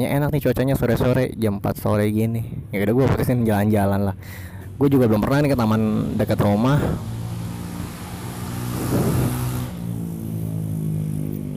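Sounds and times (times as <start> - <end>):
speech: 0.0 - 7.2
steady traffic noise: 1.1 - 11.5
motorcycle engines rumbling past on a nearby street: 3.2 - 11.5.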